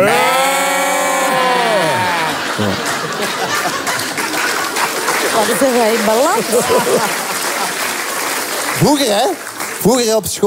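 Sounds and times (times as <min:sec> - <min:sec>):
two people imitating sheep bleating: 0:00.0 - 0:02.4
people chuckling and laughing: 0:00.0 - 0:09.2
speech: 0:05.4 - 0:07.2, 0:08.8 - 0:10.4.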